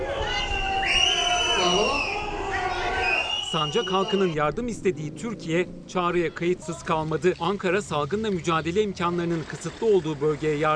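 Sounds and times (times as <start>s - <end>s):
large outdoor crowd whistling: 0.0s - 4.4s
speech: 3.5s - 10.7s.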